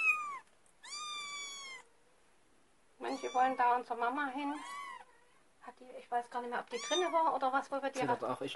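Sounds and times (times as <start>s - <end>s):
cat meowing softly: 0.0s - 2.0s, 3.0s - 5.6s, 6.5s - 7.4s
speech: 3.1s - 4.8s, 5.7s - 8.5s.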